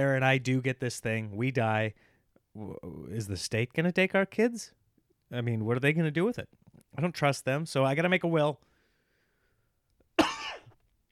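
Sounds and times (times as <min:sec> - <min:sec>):
speech: 0:00.0 - 0:08.7
dry cough: 0:10.2 - 0:10.8.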